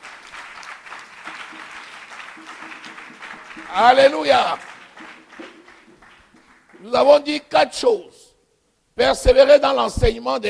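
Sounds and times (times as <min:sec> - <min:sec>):
congregation applauding during a church service: 0:00.0 - 0:07.2
speech: 0:03.7 - 0:04.7, 0:06.8 - 0:08.1, 0:09.0 - 0:10.4.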